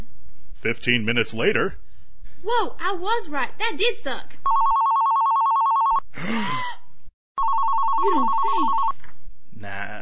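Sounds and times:
speech: 0.6 - 1.8, 2.4 - 4.8, 6.2 - 6.6, 8.0 - 8.8
telephone ringing unanswered with electronic warbling: 4.5 - 6.0, 7.4 - 8.9.

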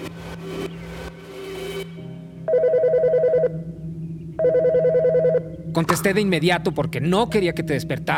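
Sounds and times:
steady low hum: 0.0 - 8.1
telephone ringing in warbling electronic bursts: 2.5 - 3.6, 4.4 - 5.5
speech: 5.8 - 8.1.

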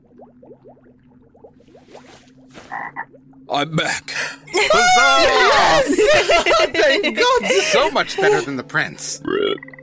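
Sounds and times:
speech: 0.3 - 9.7
frog croaking in short rising calls: 2.6 - 3.1
laughter: 4.5 - 8.6.

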